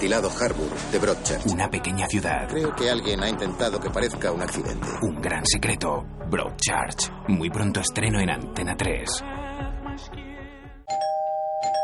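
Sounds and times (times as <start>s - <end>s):
speech: 0.0s - 10.2s
doorbell playing a multi-note chime melody: 10.9s - 11.8s.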